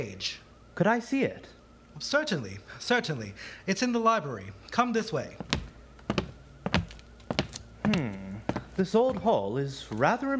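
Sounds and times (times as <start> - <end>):
speech: 0.0 - 5.6, 7.9 - 8.2, 8.8 - 10.3
soft footsteps of someone creeping on tiptoe up old hall stairs: 5.0 - 10.3.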